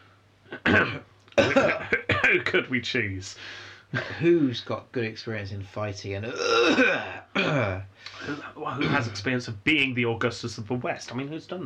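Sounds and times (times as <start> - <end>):
man clearing his throat: 0.5 - 2.6, 6.3 - 9.2
speech: 2.5 - 11.6.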